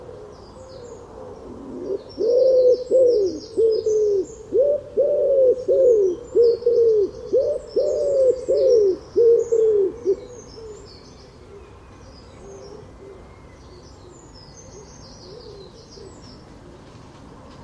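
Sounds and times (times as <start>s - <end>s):
bird giving throaty coos: 0.0s - 17.0s.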